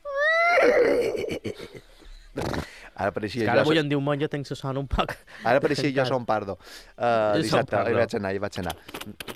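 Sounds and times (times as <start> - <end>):
person imitating horse whinny: 0.0 - 1.3
speech: 0.6 - 1.8, 2.4 - 9.3.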